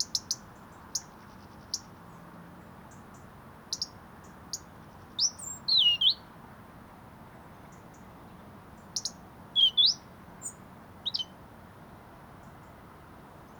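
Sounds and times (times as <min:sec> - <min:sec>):
European robin Erithacus rubecula singing high thin whistled notes: 0:00.0 - 0:02.2, 0:02.9 - 0:06.3, 0:08.8 - 0:11.4
quiet background noise: 0:00.0 - 0:13.5.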